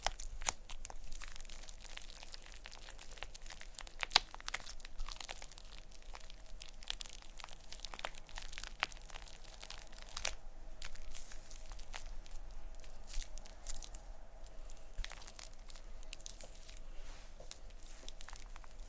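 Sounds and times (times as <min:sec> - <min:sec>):
faint low hum: 0:00.0 - 0:18.8
plastic wrap with shaving cream crinkling and rustling: 0:00.0 - 0:18.8
soft brushing strokes: 0:10.8 - 0:18.8.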